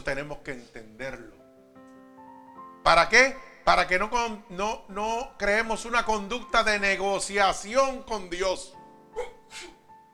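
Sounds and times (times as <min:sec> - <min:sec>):
speech: 0:00.0 - 0:01.4, 0:02.8 - 0:09.8
person sneezing: 0:09.2 - 0:09.9.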